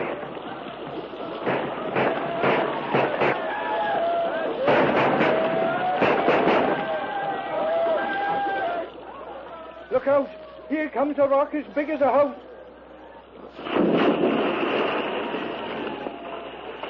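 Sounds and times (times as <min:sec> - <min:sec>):
continuous noisy rush: 0:00.0 - 0:16.8
volley of rifle fire at attackers overhead: 0:01.2 - 0:07.1, 0:13.6 - 0:16.8
speech: 0:10.1 - 0:12.5.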